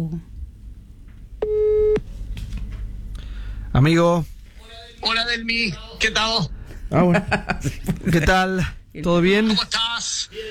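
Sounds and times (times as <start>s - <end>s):
speech: 0.0s - 0.3s, 3.8s - 4.3s, 5.0s - 10.5s
telephone call tone beep: 1.4s - 2.0s
laughter: 6.9s - 8.8s.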